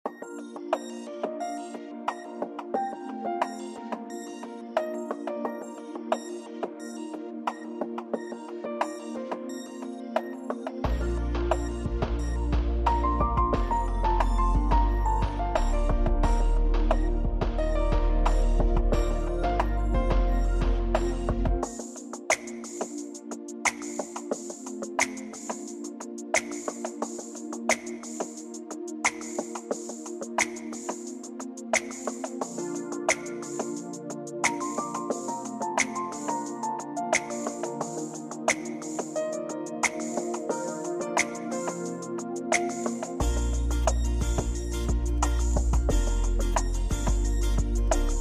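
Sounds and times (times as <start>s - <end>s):
instrumental music: 0.0s - 48.2s.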